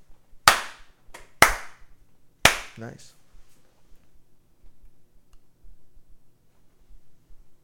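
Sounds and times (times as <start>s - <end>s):
sharp hand slaps given as a diner rating: 0.4s - 2.8s
speech: 2.8s - 3.2s.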